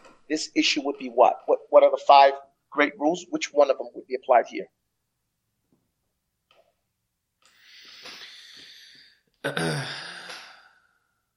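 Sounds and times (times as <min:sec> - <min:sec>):
speech: 0:00.3 - 0:04.8, 0:09.4 - 0:10.1
person breathing: 0:07.5 - 0:11.2.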